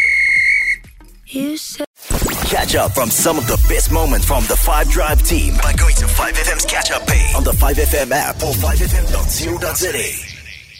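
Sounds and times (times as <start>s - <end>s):
referee's whistle blast: 0.0s - 0.9s
speech: 1.3s - 1.9s, 2.5s - 10.3s
burst of noise: 2.0s - 2.8s.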